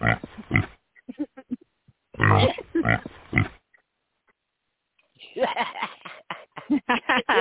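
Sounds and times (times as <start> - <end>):
pig oinking sound effect: 0.0 - 0.8, 2.2 - 3.6
laughter: 2.2 - 3.0, 5.2 - 7.3.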